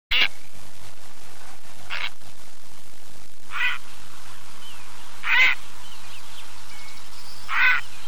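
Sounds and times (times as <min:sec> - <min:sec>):
grey heron giving harsh croaking calls: 0:03.5 - 0:03.9, 0:04.6 - 0:08.0.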